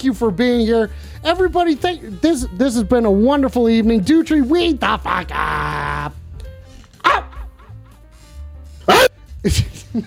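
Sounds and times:
speech: 0.0 - 6.2, 9.4 - 10.0
dog barking: 7.0 - 7.7, 8.8 - 9.1.

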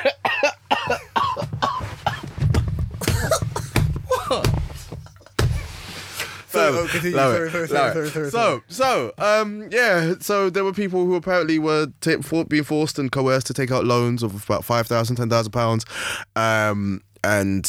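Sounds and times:
person coughing: 0.0 - 4.6
laughter: 3.0 - 5.7, 6.5 - 8.6
speech: 6.7 - 17.6.

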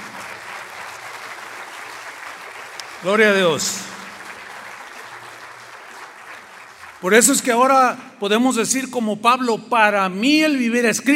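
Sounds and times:
applause from a congregation at a church service: 0.0 - 8.4
speech: 3.0 - 3.9, 7.0 - 11.1.

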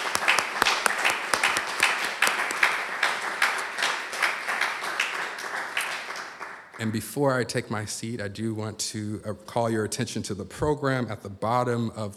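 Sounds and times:
audience applause: 0.0 - 7.0
sharp hand claps: 0.0 - 7.0
speech: 6.8 - 12.1.

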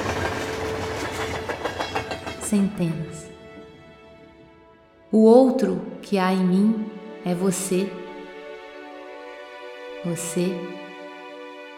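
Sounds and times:
clickety-clack of rail cars over track joints: 0.0 - 3.4
train rolling past with heavy rumble: 0.0 - 5.1
speech: 2.5 - 3.3, 5.1 - 8.0, 10.0 - 10.8.

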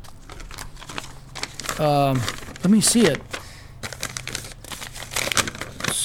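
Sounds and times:
paper note crinkling and rustling as it is unfolded: 0.0 - 6.0
speech: 1.8 - 3.3.

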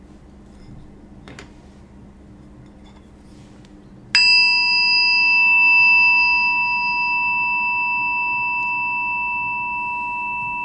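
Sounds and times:
meditation chime ringing: 4.2 - 10.6.

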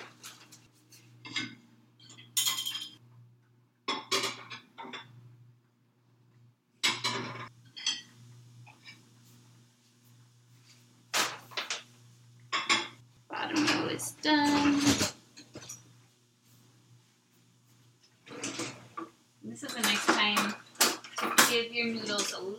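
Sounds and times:
dishes and utensils clattering while being washed: 1.2 - 3.0, 3.9 - 5.2, 6.8 - 9.1, 12.5 - 15.9, 18.3 - 22.4
speech: 14.0 - 15.1.

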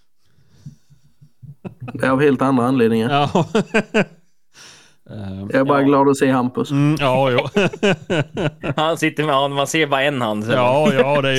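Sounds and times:
heavy breathing into a microphone: 0.0 - 1.5, 4.5 - 5.0
laughter: 0.8 - 2.3, 3.1 - 4.2, 7.0 - 9.4, 10.3 - 11.3
speech: 2.0 - 4.2, 5.1 - 11.3.

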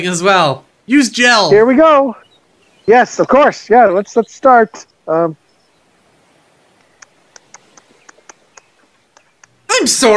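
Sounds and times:
speech: 0.0 - 2.2, 2.9 - 5.4, 9.8 - 10.1
mouth clicks imitating scissors snipping: 6.8 - 9.7.

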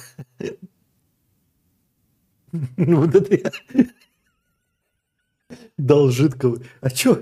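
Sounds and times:
person hiccuping with throaty bursts: 0.0 - 0.7
speech: 0.4 - 0.6, 2.5 - 4.0, 5.5 - 7.2
laughter: 2.6 - 5.7.

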